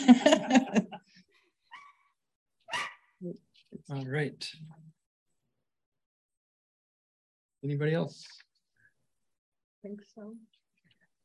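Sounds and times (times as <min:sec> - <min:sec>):
laughter: 0:00.0 - 0:01.1
speech: 0:00.3 - 0:00.8, 0:03.2 - 0:04.8, 0:07.6 - 0:08.4, 0:09.8 - 0:10.6
small dog yapping with sharp high barks: 0:02.7 - 0:03.1.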